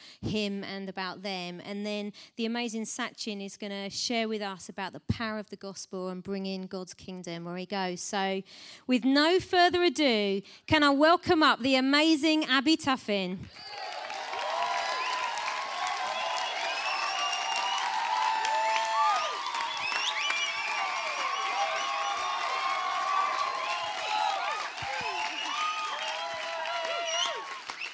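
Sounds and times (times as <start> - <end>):
speech: 0.2 - 13.8
large crowd clapping: 13.5 - 27.9.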